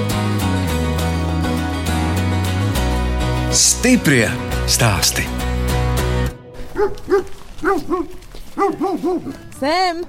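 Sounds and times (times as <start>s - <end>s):
loud music: 0.0s - 6.4s
speech: 3.6s - 5.4s, 6.8s - 10.0s
large Pyrenean mountain dog sheep guard barking deep rounded woofs: 6.6s - 9.4s.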